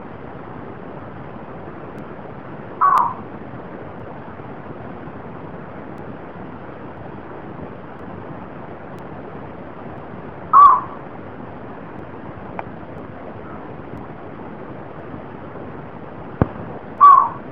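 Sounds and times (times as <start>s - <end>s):
bittern call: 2.8s - 3.2s, 10.5s - 11.0s, 17.0s - 17.5s.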